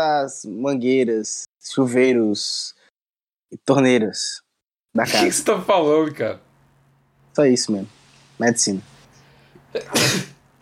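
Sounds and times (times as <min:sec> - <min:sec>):
speech: 0:00.0 - 0:02.8, 0:03.5 - 0:04.4, 0:05.0 - 0:06.5, 0:07.4 - 0:08.9, 0:09.7 - 0:10.4
person sneezing: 0:09.7 - 0:10.4.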